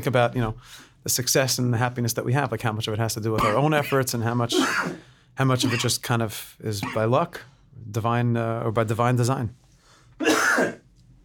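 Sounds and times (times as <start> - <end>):
speech: 0.0 - 9.6
short harsh cough: 3.4 - 5.0, 5.6 - 5.9, 6.8 - 7.1, 10.2 - 10.9.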